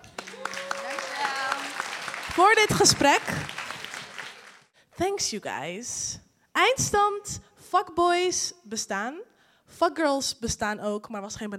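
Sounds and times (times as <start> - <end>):
whooping whistle-like cheers: 0.0 - 2.3
applause for the guests: 0.0 - 4.7
speech: 2.4 - 3.5, 5.0 - 11.5.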